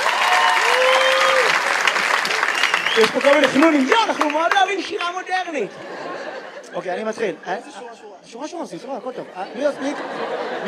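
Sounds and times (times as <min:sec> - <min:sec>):
audience applause at a modern poetry reading: 0:00.0 - 0:05.3
speech: 0:03.0 - 0:06.1, 0:06.7 - 0:10.6
laughter: 0:03.6 - 0:08.0, 0:08.8 - 0:10.6.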